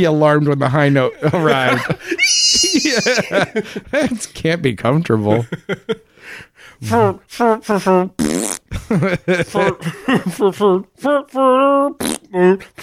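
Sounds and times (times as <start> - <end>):
speech: 0.0 - 12.8
laughter: 0.8 - 4.3, 5.2 - 6.1, 8.7 - 10.8
person making vocal fart imitations: 8.2 - 8.7, 12.0 - 12.3.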